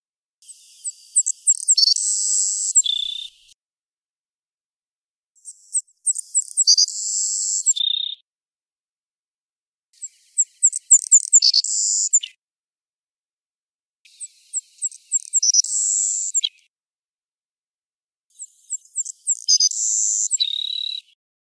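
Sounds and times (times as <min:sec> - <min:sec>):
bird singing a high sweet phrase: 0:00.4 - 0:03.6, 0:05.4 - 0:08.2, 0:10.0 - 0:12.4, 0:14.1 - 0:16.7, 0:18.3 - 0:21.2.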